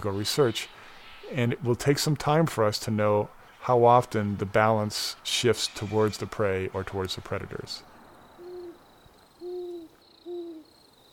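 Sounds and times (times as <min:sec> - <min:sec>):
speech: 0:00.0 - 0:07.9
insects humming: 0:00.0 - 0:11.1
owl hooting: 0:08.3 - 0:11.1.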